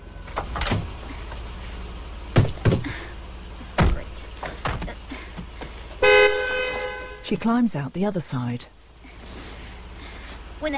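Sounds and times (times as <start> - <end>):
car passenger door knocking against a tree: 0.3 - 1.0, 2.3 - 3.0, 3.8 - 7.0
speech: 7.3 - 8.8, 10.6 - 10.7.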